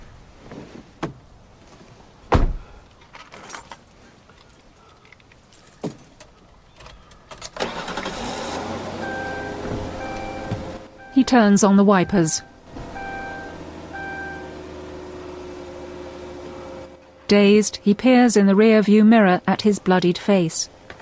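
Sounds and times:
car door shut from the driver's seat in an empty field: 2.3s - 2.7s, 9.6s - 10.8s
speech: 11.3s - 12.5s, 17.3s - 20.8s.

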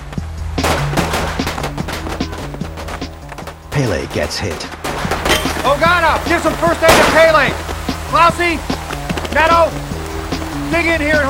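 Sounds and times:
heavy gunfire between pirates in a jungle and a crew: 0.6s - 3.7s, 4.4s - 7.6s
speech: 3.8s - 5.1s, 5.7s - 9.9s, 10.7s - 11.2s.

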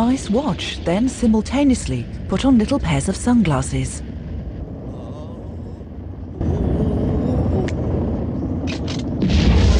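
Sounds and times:
speech: 0.1s - 4.1s
rocket launching with jets of fire: 6.8s - 9.7s.

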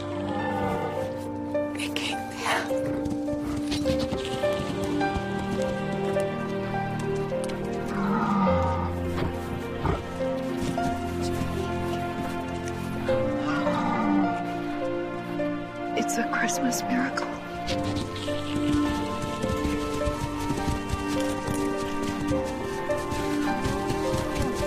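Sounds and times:
reindeer herd hooves clattering on a street: 0.0s - 24.6s
speech: 16.6s - 17.2s.

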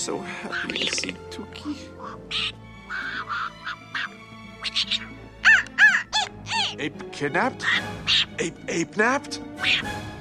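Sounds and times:
speech: 0.0s - 5.2s, 6.7s - 10.1s
bird squawking on an apartment balcony: 0.4s - 1.2s, 1.9s - 6.8s, 7.5s - 8.6s, 9.6s - 10.1s.

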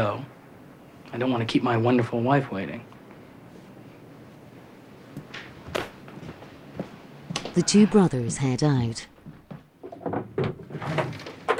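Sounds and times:
speech: 0.0s - 0.4s, 1.1s - 2.9s, 7.6s - 9.1s
wooden drawers sliding open and shut while someone rummages: 9.9s - 11.5s.

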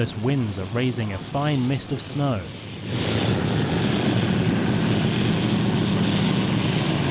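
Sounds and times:
speech: 0.0s - 4.0s
ski-equipped propeller plane engines roaring while landing on a wind-swept ice sheet: 0.0s - 7.0s.

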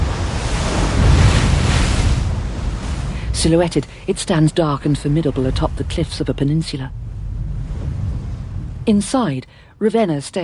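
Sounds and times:
gusty wind noise blowing across the microphone: 0.0s - 3.4s, 5.0s - 9.0s
waves crashing against a rocky coast beneath a castle: 0.0s - 9.4s
speech: 3.4s - 7.0s, 8.8s - 10.4s.

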